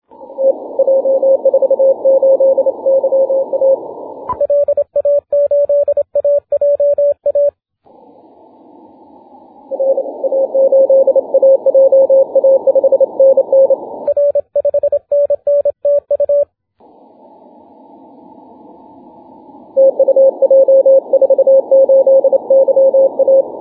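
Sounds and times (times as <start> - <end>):
6m band CW morse code signal: 0.4 - 7.5, 9.8 - 16.4, 19.8 - 23.5.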